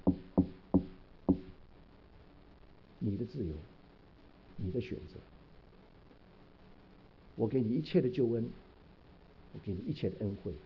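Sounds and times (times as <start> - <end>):
knocking on a wooden door: 0.0 - 1.5
speech: 3.0 - 3.8, 4.6 - 5.4, 7.4 - 8.6, 9.5 - 10.6.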